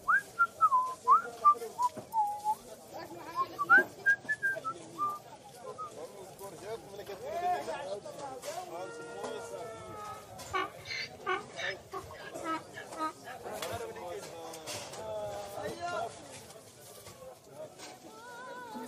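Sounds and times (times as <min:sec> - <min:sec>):
murmuring voices and busy chatter: 0:00.0 - 0:18.8
man whistling a tune to himself: 0:00.1 - 0:02.6.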